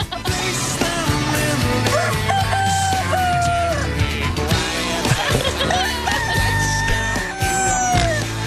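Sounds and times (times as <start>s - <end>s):
laughter: 0.0s - 1.0s, 4.6s - 8.3s
roosters crowing: 1.8s - 4.4s, 5.0s - 8.4s.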